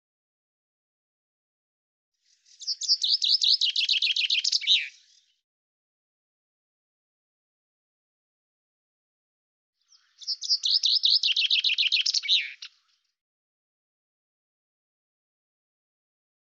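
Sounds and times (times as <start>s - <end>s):
Common chaffinch singing: 2.4s - 5.4s, 9.8s - 13.2s.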